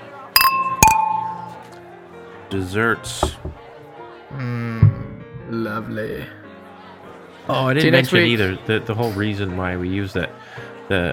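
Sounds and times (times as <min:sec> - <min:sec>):
glasses clinking together in a toast: 0:00.4 - 0:01.8
speech: 0:02.5 - 0:03.7, 0:04.3 - 0:06.4, 0:07.5 - 0:11.1.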